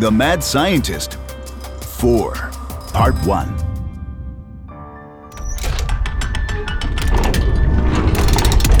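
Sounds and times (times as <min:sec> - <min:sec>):
speech: 0:00.0 - 0:01.4, 0:02.0 - 0:03.7
big heavy metal door grinding and rumbling open: 0:02.7 - 0:08.7
loud mechanical clanking and rattling of metal door: 0:05.3 - 0:08.7.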